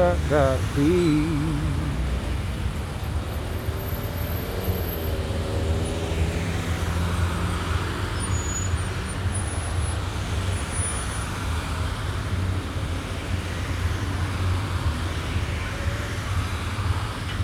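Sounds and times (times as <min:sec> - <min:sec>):
city bus engine rumbling: 0:00.0 - 0:04.0
street traffic: 0:00.0 - 0:17.4
speech: 0:00.1 - 0:01.8.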